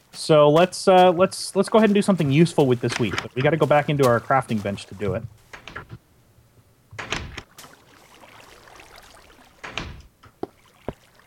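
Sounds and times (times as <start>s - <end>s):
speech: 0.2s - 5.4s
crisp hollow clunks of a video game wooden door: 0.5s - 7.8s, 9.4s - 11.0s
video game wooden door creaking open: 5.0s - 6.0s, 6.9s - 7.5s, 9.6s - 10.4s.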